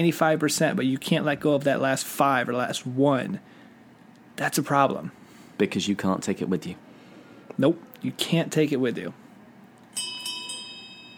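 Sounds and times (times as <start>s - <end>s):
speech: 0.0s - 3.6s, 4.4s - 6.9s, 7.5s - 9.2s
small last call bell ringing: 9.9s - 11.1s.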